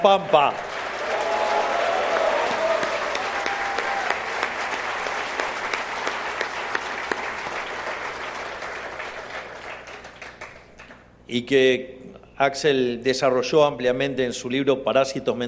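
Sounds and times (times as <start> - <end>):
speech: 0.0 - 0.7, 11.3 - 15.4
audience applause: 0.0 - 11.0.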